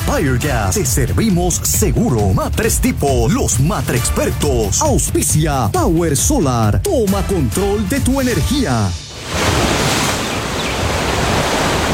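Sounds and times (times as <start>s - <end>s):
speech: 0.2s - 9.7s
ocean surf breaking at the shoreline: 9.0s - 11.9s.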